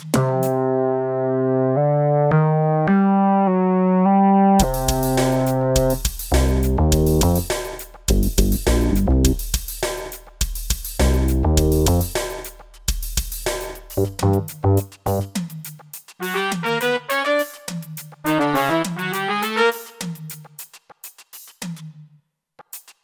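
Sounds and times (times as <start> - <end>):
groove music in C7 F7 G7: 0.2 - 9.9, 10.6 - 12.5, 13.0 - 15.6, 16.2 - 20.4.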